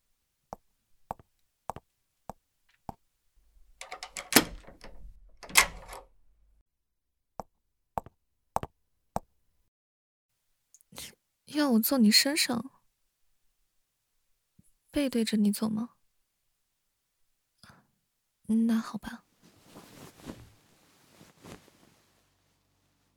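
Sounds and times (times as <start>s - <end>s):
clicks and clacks from a door being locked: 3.8s - 6.2s
speech: 11.6s - 12.7s, 15.0s - 16.0s, 18.5s - 19.2s
rustling handling noise: 19.4s - 22.3s.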